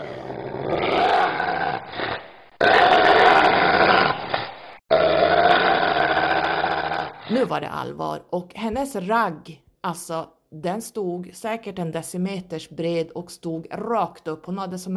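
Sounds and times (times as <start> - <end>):
female dog growling by a stair step: 0.0 - 7.3
speech: 7.4 - 14.9.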